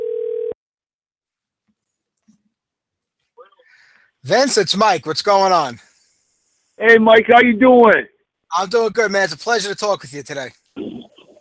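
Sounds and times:
telephone ring tone on an outgoing call: 0.0 - 0.6
speech: 4.2 - 5.9, 6.8 - 10.6.

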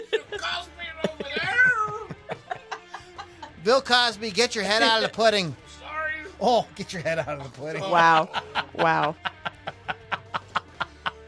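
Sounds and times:
laughter: 0.0 - 5.5, 6.8 - 11.2
speech: 0.3 - 0.8, 3.6 - 5.6, 6.4 - 9.3
cat meowing: 1.3 - 2.2.

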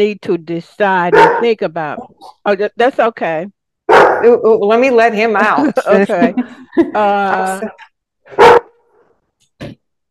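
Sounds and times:
speech: 0.0 - 3.6, 4.2 - 8.6
small dog barking at a passerby: 1.1 - 1.5, 3.9 - 4.3, 8.4 - 8.7
laughter: 5.4 - 7.8.

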